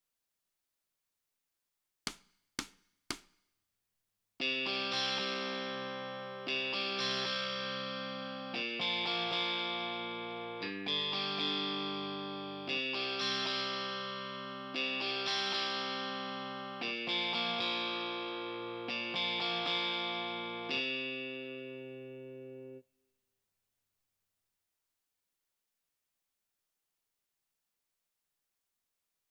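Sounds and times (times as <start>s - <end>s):
guitar: 4.4s - 22.8s.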